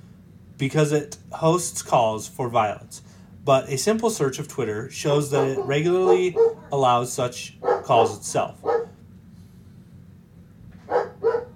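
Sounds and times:
low hum: 0:00.0 - 0:11.5
speech: 0:00.6 - 0:08.7
dog barking: 0:05.3 - 0:06.8, 0:07.6 - 0:09.0, 0:10.8 - 0:11.5.

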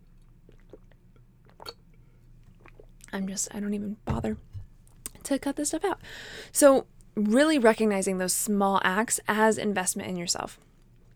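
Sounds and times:
low steady room hum: 0:00.0 - 0:11.1
gulp-like swallow: 0:00.5 - 0:01.8
mouth sounds of person sipping water: 0:00.5 - 0:01.8, 0:02.5 - 0:03.1
speech: 0:03.1 - 0:04.5, 0:05.3 - 0:10.7.

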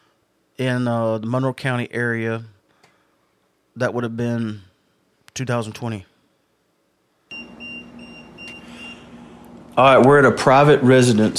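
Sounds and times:
speech: 0:00.6 - 0:02.6, 0:03.8 - 0:04.7, 0:05.4 - 0:06.1, 0:09.8 - 0:11.3
phone alert with repeating high electronic beeps: 0:07.3 - 0:09.1.

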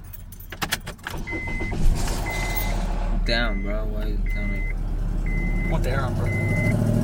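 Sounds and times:
car starter struggling with sputtering engine on a cold start: 0:00.7 - 0:06.7
speech: 0:03.3 - 0:04.7, 0:05.7 - 0:06.9.

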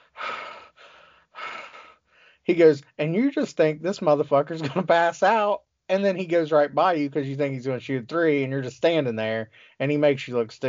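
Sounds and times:
voice imitating heavy exhausted breathing: 0:00.0 - 0:02.5, 0:09.5 - 0:09.8
speech: 0:02.4 - 0:10.6.

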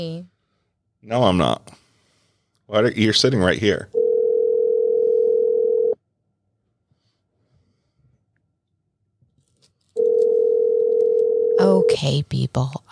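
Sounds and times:
speech: 0:00.0 - 0:00.3, 0:01.0 - 0:01.8, 0:02.7 - 0:04.0, 0:11.6 - 0:12.9
breaths: 0:00.3 - 0:00.9, 0:01.7 - 0:02.7, 0:06.8 - 0:08.3
telephone dial tone: 0:04.0 - 0:06.0, 0:10.0 - 0:11.9.

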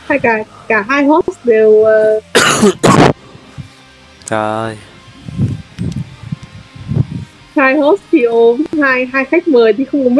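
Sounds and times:
speech: 0:00.1 - 0:03.2, 0:04.3 - 0:04.9, 0:07.6 - 0:10.1
loud harsh coughing: 0:02.3 - 0:03.2
throat clearing: 0:02.4 - 0:03.2.

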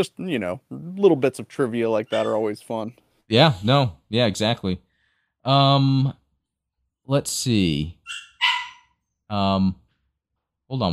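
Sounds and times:
speech: 0:00.0 - 0:06.2, 0:07.1 - 0:08.2, 0:09.3 - 0:09.8, 0:10.7 - 0:10.9
dog barking: 0:08.1 - 0:08.9.

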